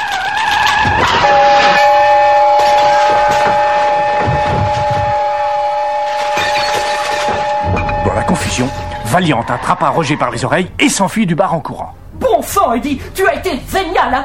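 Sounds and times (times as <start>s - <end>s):
shrill steam whistle: 0.0s - 10.4s
speech: 8.6s - 14.2s.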